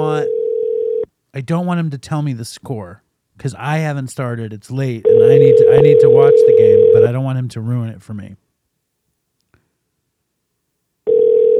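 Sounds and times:
outgoing phone call ringing tone: 0.0 - 1.1, 5.1 - 7.1, 11.1 - 11.5
speech: 0.1 - 0.4, 1.3 - 8.4.

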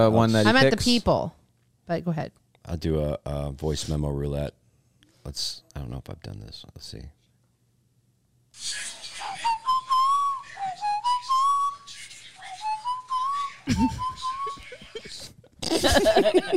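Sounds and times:
speech: 0.0 - 4.6, 5.2 - 7.2, 8.6 - 9.0, 13.6 - 14.1, 15.6 - 16.5
person whistling a short breathy tune: 9.5 - 11.9, 12.6 - 14.9
brief laugh: 13.7 - 16.2.

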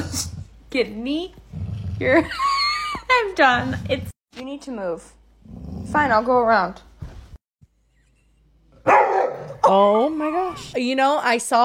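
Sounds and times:
speech: 0.2 - 1.4, 2.0 - 2.5, 3.1 - 6.9, 9.6 - 11.6
senior dog barking while guarding food: 8.8 - 9.8.

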